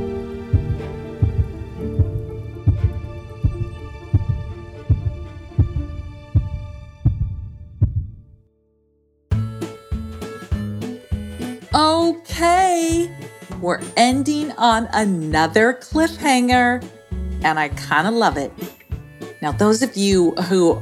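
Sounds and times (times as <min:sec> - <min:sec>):
heartbeat sound effect thumping: 0:00.0 - 0:08.4
speech: 0:11.8 - 0:18.7, 0:19.4 - 0:20.8.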